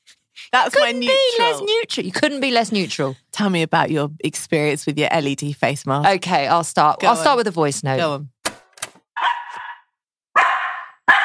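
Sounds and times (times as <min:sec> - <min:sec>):
speech: 0:00.5 - 0:08.3
dog barking: 0:09.2 - 0:11.2.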